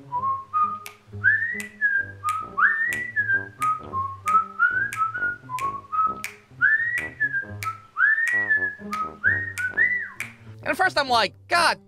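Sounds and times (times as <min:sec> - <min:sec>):
man outside a door whistling a lilting tune: 0:00.0 - 0:10.4
speech: 0:10.8 - 0:11.8.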